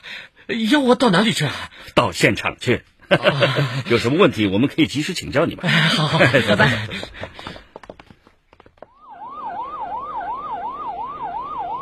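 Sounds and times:
speech: 0.5 - 7.6
laughter: 3.1 - 4.6, 5.3 - 7.6
sharp clattering knocks: 6.5 - 9.0
police car siren yelping: 9.0 - 11.8.

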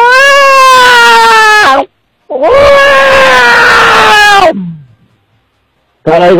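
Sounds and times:
person's voice mimicking a wild cat's yowl: 0.0 - 4.9.

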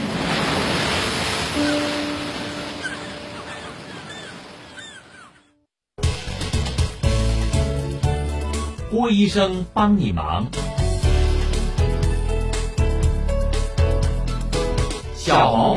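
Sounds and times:
ocean waves: 0.0 - 5.5
faint bird cries above the surf: 1.5 - 5.6
loud burst of music: 6.0 - 15.7
speech: 9.0 - 10.7, 15.3 - 15.7.

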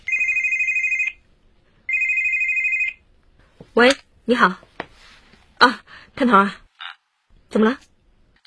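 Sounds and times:
mobile phone ringing with a high electronic trill: 0.0 - 1.2, 1.9 - 3.0
speech: 3.8 - 4.7, 5.6 - 6.6, 7.5 - 7.9.

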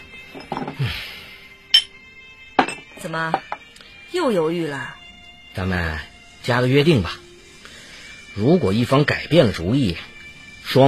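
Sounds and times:
glasses clinking in a toast: 0.3 - 0.8, 1.7 - 2.0, 2.6 - 3.6
tableware clattering: 0.3 - 0.8, 2.6 - 3.6
speech: 0.3 - 1.2, 3.0 - 3.5, 4.1 - 5.0, 5.6 - 7.2, 8.4 - 10.1, 10.7 - 10.8.

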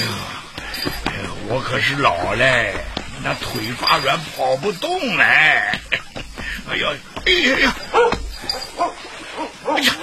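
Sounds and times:
speech: 0.0 - 6.1, 6.7 - 8.2
dog barking and yipping: 7.9 - 10.0.

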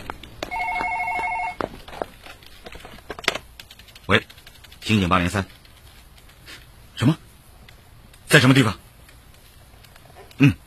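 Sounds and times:
telephone ringing: 0.4 - 1.7
speech: 4.1 - 5.6, 7.0 - 7.2, 8.3 - 8.8, 10.4 - 10.6.

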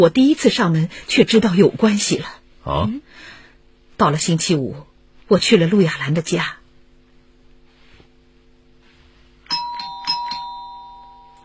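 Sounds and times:
speech: 0.0 - 3.3, 4.0 - 6.6
doorbell ding-dong chimes: 9.5 - 11.4.

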